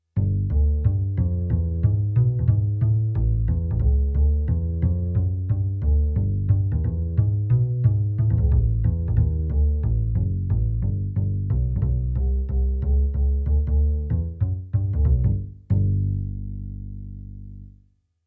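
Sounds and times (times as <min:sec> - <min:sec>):
acoustic bass on a digital piano: 0:00.0 - 0:17.9.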